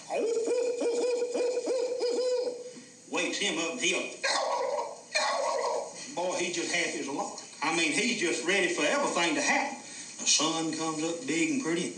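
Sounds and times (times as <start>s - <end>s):
person's voice imitating an owl hooting: 0.0s - 2.8s, 4.2s - 6.0s
speech: 3.4s - 4.5s, 6.2s - 11.9s.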